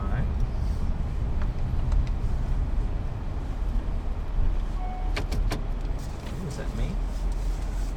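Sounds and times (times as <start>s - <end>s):
car engine humming low from inside the vehicle while parallel parking: 0.0s - 7.9s
brief tones: 4.8s - 5.2s.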